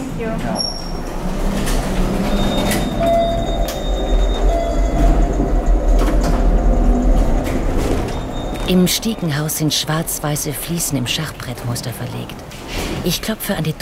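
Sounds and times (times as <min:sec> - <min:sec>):
elevator mechanical rumble and hum in an apartment building: 0:00.0 - 0:13.8
speech: 0:00.2 - 0:01.2, 0:08.7 - 0:13.8.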